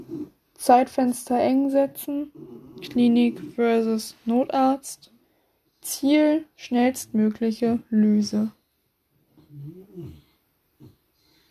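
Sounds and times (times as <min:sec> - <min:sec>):
dog short grunt: 0:00.0 - 0:00.4, 0:02.2 - 0:03.7, 0:09.3 - 0:11.1
speech: 0:00.6 - 0:05.1, 0:05.8 - 0:08.6.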